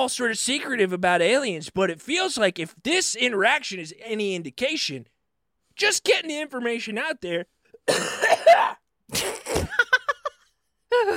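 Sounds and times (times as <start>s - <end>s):
speech: 0.0s - 5.1s, 5.8s - 9.9s, 10.9s - 11.1s
rough cough: 7.8s - 9.9s.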